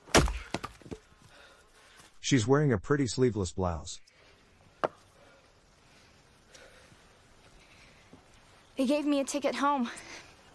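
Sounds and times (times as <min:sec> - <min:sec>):
axe splitting a log on a chopping block: 0:00.0 - 0:01.0
speech: 0:02.3 - 0:04.1, 0:08.8 - 0:10.3.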